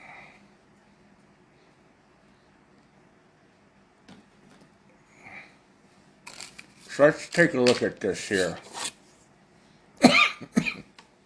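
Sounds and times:
speech: 0:07.0 - 0:08.7
person coughing harshly: 0:10.0 - 0:10.9.

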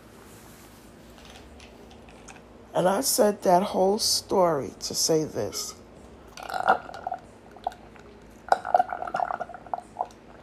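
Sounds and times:
speech: 0:02.8 - 0:05.8
sipping and swallowing water: 0:06.3 - 0:10.4.

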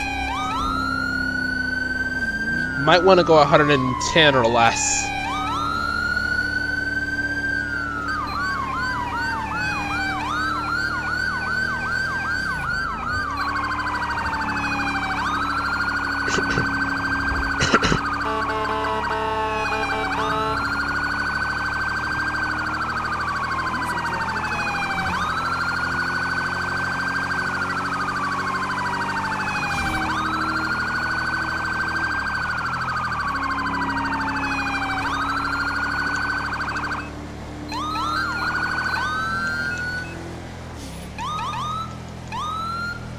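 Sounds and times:
police car siren responding code three: 0:00.0 - 0:40.4, 0:41.0 - 0:43.1
speech: 0:02.8 - 0:05.1
short harsh horn-like blast of police car: 0:17.4 - 0:20.8.

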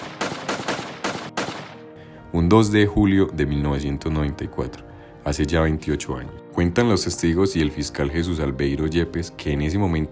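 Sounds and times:
burst of gunfire: 0:00.0 - 0:01.9
speech: 0:02.3 - 0:10.1.

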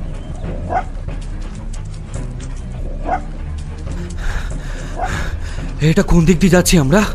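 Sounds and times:
rushing noise: 0:00.0 - 0:07.1
dog barking while tracking a scent along a road: 0:00.7 - 0:00.9, 0:03.0 - 0:03.3
speech: 0:05.8 - 0:07.1.

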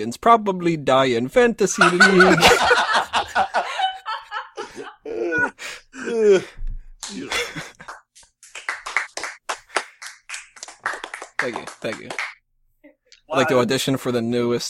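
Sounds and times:
speech: 0:00.0 - 0:02.8, 0:06.2 - 0:06.6, 0:11.5 - 0:12.3, 0:13.3 - 0:14.6
people chuckling: 0:01.8 - 0:08.0
people groaning: 0:04.6 - 0:07.6
applause as a few people clap: 0:07.0 - 0:12.4.

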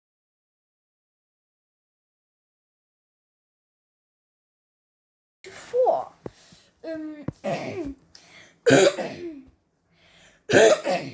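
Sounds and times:
faint breathy sounds: 0:06.3 - 0:06.8, 0:08.1 - 0:08.6, 0:09.9 - 0:10.5
speech: 0:06.8 - 0:08.0, 0:08.6 - 0:09.4, 0:10.5 - 0:11.1
person coughing with rough throat-clearing: 0:07.4 - 0:08.0, 0:08.6 - 0:09.5, 0:10.5 - 0:11.1.

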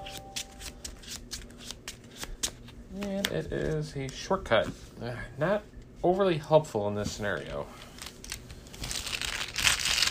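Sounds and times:
deck of playing cards shuffled during a card game: 0:00.0 - 0:04.8, 0:07.8 - 0:10.0
speech: 0:03.0 - 0:07.8.

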